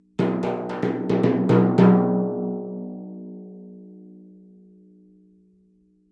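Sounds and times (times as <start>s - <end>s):
timpani played with hands and mallets: 0.2s - 3.6s.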